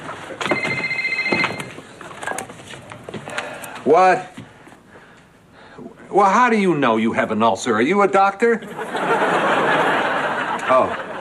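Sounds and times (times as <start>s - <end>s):
cell phone ringing with bright electronic tone: 0.4s - 1.8s
speech: 3.9s - 4.4s, 6.1s - 9.2s, 10.7s - 11.0s
laughter: 8.6s - 11.2s.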